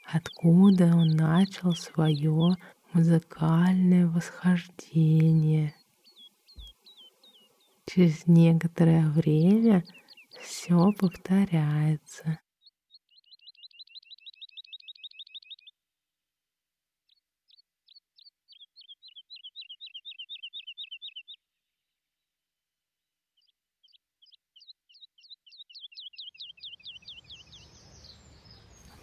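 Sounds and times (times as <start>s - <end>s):
skylark trilling song: 0.0s - 15.8s, 17.0s - 22.0s, 23.0s - 29.0s
speech: 0.1s - 5.8s, 7.9s - 12.4s.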